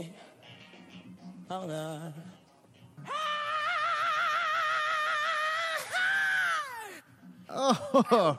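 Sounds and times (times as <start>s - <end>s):
speech: 1.5s - 2.4s, 7.5s - 8.3s
singer screaming with vibrato in a recorded song: 3.1s - 7.0s.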